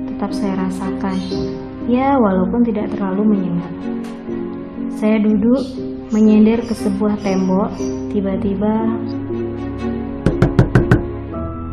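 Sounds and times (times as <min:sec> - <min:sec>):
speech: 0:00.2 - 0:10.0
sharp knocks on a window facing the back of a building: 0:10.2 - 0:11.2.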